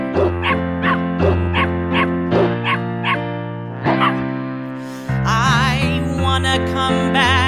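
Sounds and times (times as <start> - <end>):
sustained musical backing: 0.0 - 7.4
puppies barking and yipping: 0.2 - 3.2.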